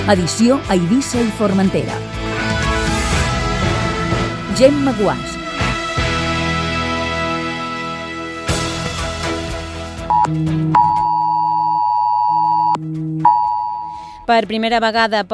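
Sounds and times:
speech: 0.1s - 2.2s, 4.6s - 5.4s, 14.3s - 15.3s
brief rich musical chord: 2.0s - 10.7s
harsh civil protection emergency alert tone from phones: 10.1s - 14.0s.

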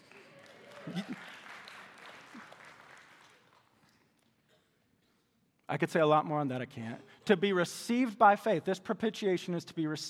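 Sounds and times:
crowd clapping and cheering: 0.0s - 4.3s
speech: 0.9s - 1.2s, 5.7s - 10.0s.

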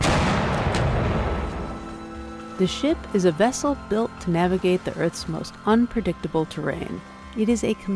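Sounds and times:
cannon fire: 0.0s - 1.9s
speech: 2.6s - 7.9s.

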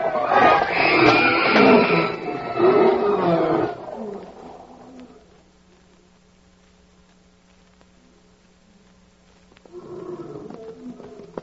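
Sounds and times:
big cats in wild animal cages roaring and snarling: 0.0s - 5.2s, 9.7s - 11.4s.

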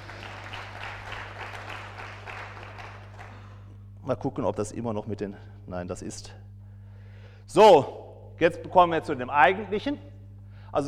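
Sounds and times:
crowd applauding with many hands clapping: 0.0s - 3.5s
low steady hum: 0.0s - 10.8s
speech: 4.1s - 6.5s, 7.5s - 10.1s.

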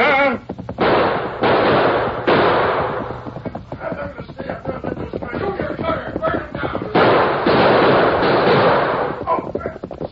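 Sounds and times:
sharp pops: 0.5s - 10.0s
gunshots: 0.7s - 10.0s.

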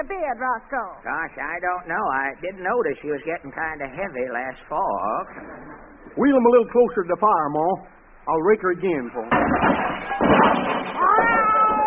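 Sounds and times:
speech: 0.0s - 10.8s
cat meowing: 11.0s - 11.8s.

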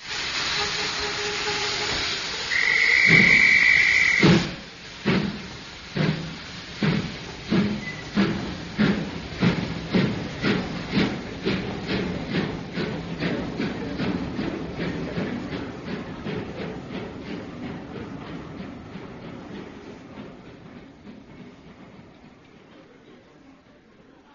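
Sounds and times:
steam train hissing: 0.0s - 24.3s
steam train whistle: 0.4s - 4.5s.

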